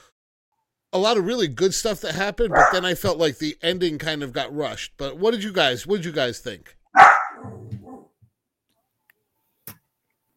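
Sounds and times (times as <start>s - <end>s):
speech: 0.9s - 7.0s
dog barking: 2.5s - 2.9s, 7.0s - 8.1s.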